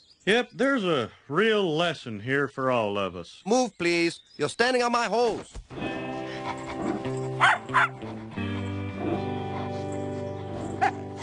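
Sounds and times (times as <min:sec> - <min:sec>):
speech: 0:00.2 - 0:06.6
music: 0:05.7 - 0:11.2
two dogs barking: 0:05.8 - 0:11.2
dog sharp yip: 0:06.5 - 0:08.0, 0:10.6 - 0:11.2.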